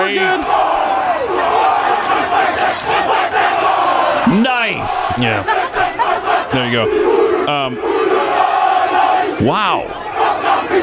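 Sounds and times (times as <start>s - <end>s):
large group chanting and shouting in unison, Māori haka war chant: 0.0s - 10.8s
speech: 0.1s - 1.6s, 4.3s - 5.8s, 6.5s - 7.9s, 9.4s - 10.0s
laughter: 4.3s - 7.0s.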